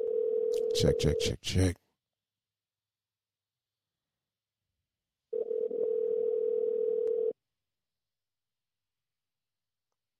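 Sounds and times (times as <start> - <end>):
telephone ringback tone: 0.0 - 0.7, 5.3 - 7.4
speech: 0.8 - 1.8.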